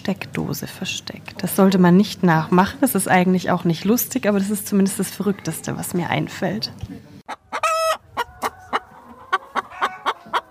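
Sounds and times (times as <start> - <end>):
speech: 0.1 - 7.4
chickens clucking: 7.3 - 10.4.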